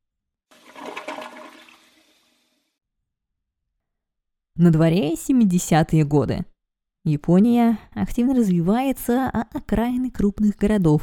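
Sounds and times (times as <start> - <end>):
city toilet flushing into the sewer: 0.5 - 2.7
speech: 4.6 - 11.0.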